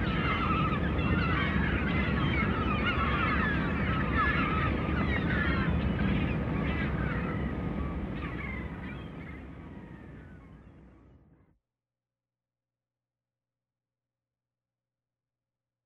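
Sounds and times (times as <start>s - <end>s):
continuous low roar: 0.0s - 11.2s
many sea gulls crying and yelping: 0.0s - 11.2s.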